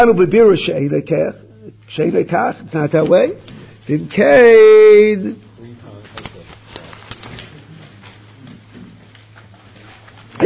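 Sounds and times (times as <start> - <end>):
speech: 0.0 - 5.4
steady low hum: 0.0 - 10.4
crisp paper rustling: 5.9 - 10.4.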